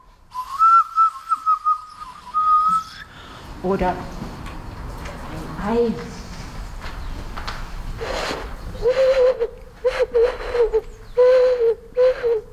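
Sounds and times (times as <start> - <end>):
owl-like hoots blown on a snail shell: 0.3 - 3.1, 8.0 - 12.5
speech: 3.6 - 4.2, 5.6 - 6.2.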